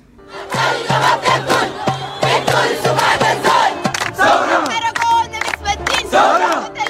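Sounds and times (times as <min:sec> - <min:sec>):
protest crowd chanting and shouting: 0:00.3 - 0:04.9, 0:05.9 - 0:06.8.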